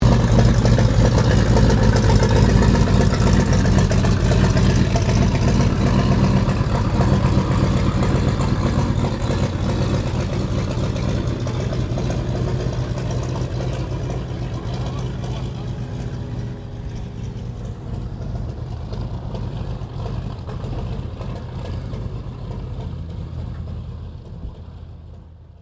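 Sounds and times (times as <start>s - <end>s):
1916 Sopwith Pup replica airplane taxiing: 0.0s - 25.6s.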